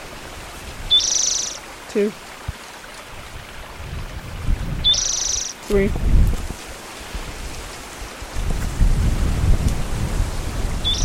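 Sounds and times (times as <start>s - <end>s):
speech: 2.0s - 2.3s, 5.7s - 6.4s
strong wind blowing outdoors: 2.4s - 11.0s.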